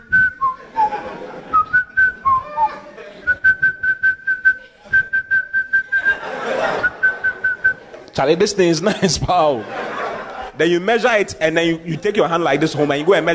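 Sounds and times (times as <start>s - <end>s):
person whistling a casual wandering tune: 0.0s - 6.2s, 6.8s - 7.8s
laughter: 0.0s - 13.3s
speech: 8.2s - 9.9s, 10.6s - 13.3s.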